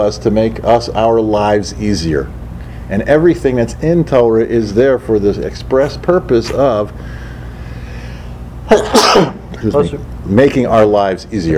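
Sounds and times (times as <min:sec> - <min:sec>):
speech: 0:00.0 - 0:07.2, 0:08.7 - 0:11.5
human sneeze: 0:05.8 - 0:06.8, 0:08.7 - 0:09.6.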